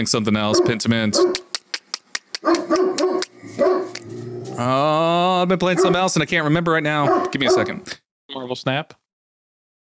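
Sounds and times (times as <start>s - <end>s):
speech: 0.0s - 1.5s, 4.6s - 9.0s
dog barking: 0.5s - 1.5s, 2.4s - 4.0s, 5.7s - 6.1s, 7.0s - 7.8s.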